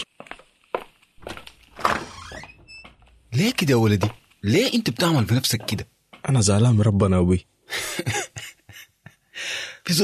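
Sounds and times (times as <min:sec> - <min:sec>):
door being opened at home with a dull thunk: 0:01.2 - 0:03.0
speech: 0:03.4 - 0:08.2.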